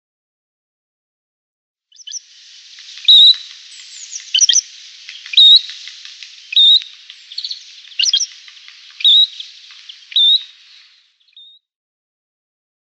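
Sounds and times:
great grey shrike scratchy chirps and squeaky notes: 0:02.0 - 0:11.2
great grey shrike whistled song: 0:02.0 - 0:11.6.

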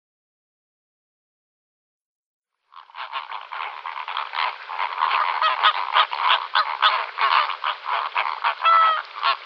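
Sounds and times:
greater flamingo flock calling with overlapping nasal honks: 0:02.7 - 0:09.4.

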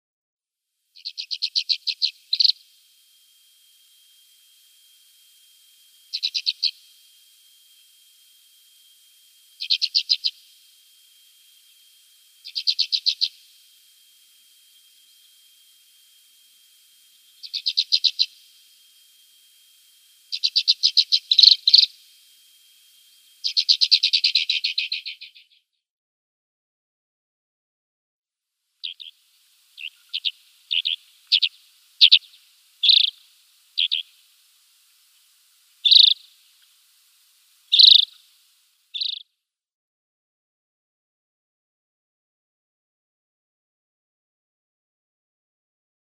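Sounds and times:
Alpine Accentor calls: 0:01.0 - 0:02.7, 0:06.1 - 0:06.9, 0:09.6 - 0:10.5, 0:12.4 - 0:13.5, 0:17.4 - 0:18.4, 0:20.3 - 0:22.0, 0:23.4 - 0:25.6, 0:28.8 - 0:29.2, 0:29.8 - 0:33.2, 0:33.8 - 0:34.2, 0:35.8 - 0:36.4, 0:37.7 - 0:38.3, 0:38.9 - 0:39.2.

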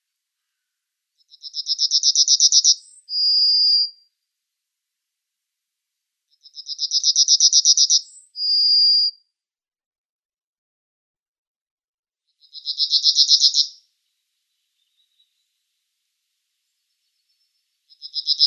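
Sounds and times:
yellowhammer singing: 0:01.2 - 0:04.1, 0:06.3 - 0:09.2, 0:12.4 - 0:15.8, 0:16.5 - 0:18.4.

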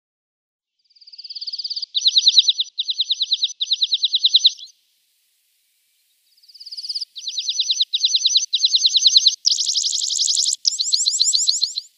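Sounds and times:
Red-throated Pipit singing high rapid trilled phrases: 0:01.5 - 0:04.7, 0:06.6 - 0:11.9.

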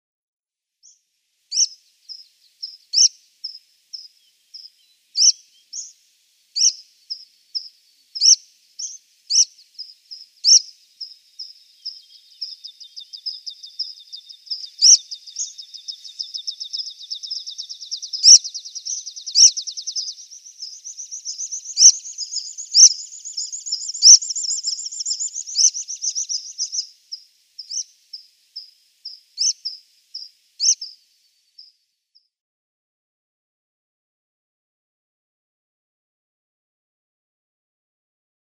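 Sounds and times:
Water Pipit calls: 0:01.5 - 0:05.9, 0:06.6 - 0:26.9, 0:27.6 - 0:27.9, 0:28.6 - 0:31.0.

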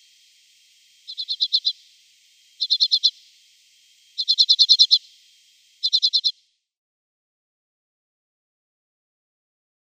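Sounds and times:
Common Redpoll dry chattering calls: 0:01.0 - 0:01.9, 0:02.6 - 0:03.4, 0:04.1 - 0:06.4.

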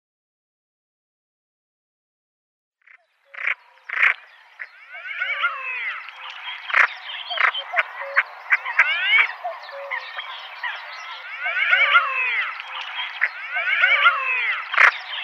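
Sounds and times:
common pochard males chorus of wheezy whistled calls: 0:03.3 - 0:15.2.

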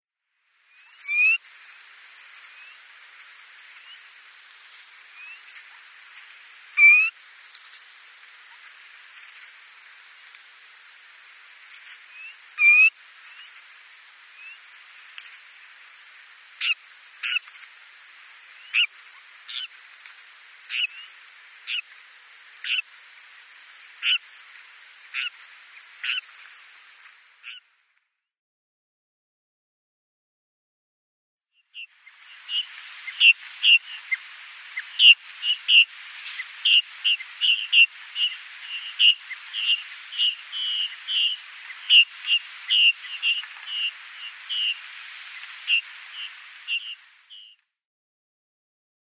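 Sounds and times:
bar-tailed lark calls: 0:00.9 - 0:01.4, 0:06.8 - 0:07.2, 0:12.2 - 0:13.0, 0:16.6 - 0:17.5, 0:18.6 - 0:19.8, 0:20.7 - 0:21.9, 0:22.6 - 0:22.9, 0:24.0 - 0:24.3, 0:25.1 - 0:25.4, 0:26.0 - 0:26.3, 0:31.8 - 0:47.6.

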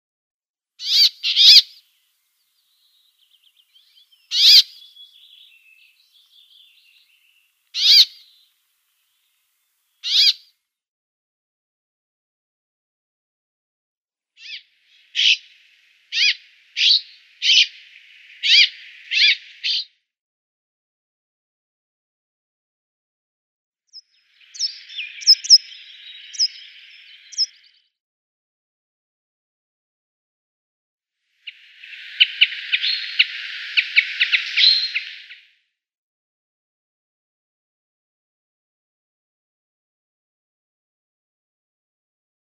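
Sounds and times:
Brambling calls: 0:00.8 - 0:01.8, 0:04.3 - 0:06.8, 0:07.8 - 0:08.3, 0:10.0 - 0:10.4, 0:14.4 - 0:19.8, 0:24.4 - 0:27.6, 0:31.4 - 0:35.5.

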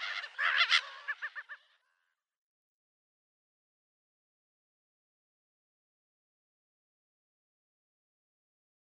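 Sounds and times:
slender-billed gull calling at the nest: 0:00.0 - 0:02.0.

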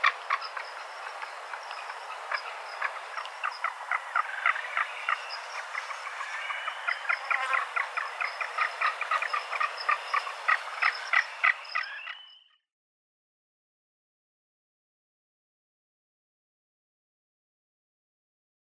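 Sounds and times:
Magnificent frigatebird giving dry clicking pulses: 0:00.0 - 0:12.2.

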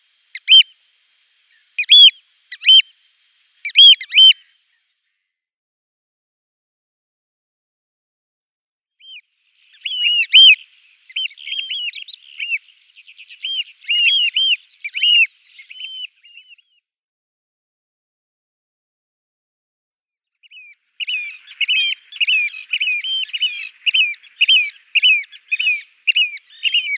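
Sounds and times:
Eurasian oystercatcher piping calls: 0:00.3 - 0:00.7, 0:01.7 - 0:02.9, 0:03.6 - 0:04.5, 0:09.0 - 0:16.7, 0:20.4 - 0:26.9.

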